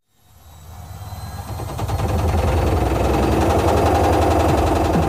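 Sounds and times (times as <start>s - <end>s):
old washing machine rattling and banging: 1.6s - 5.0s.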